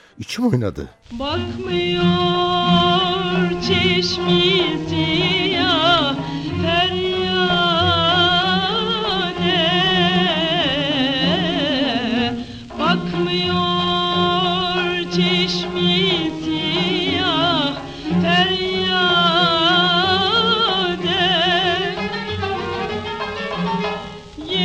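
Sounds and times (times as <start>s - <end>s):
speech: 0.2s - 5.8s
woman singing a Turkish classical song in the Nihavend mode: 1.1s - 23.1s, 24.4s - 24.6s.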